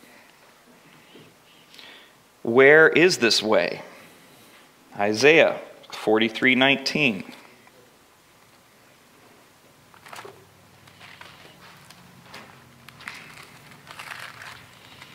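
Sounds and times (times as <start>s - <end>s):
speech: 2.4s - 3.9s, 5.0s - 7.4s
thin pages of a paper Bible being turned: 9.9s - 15.1s.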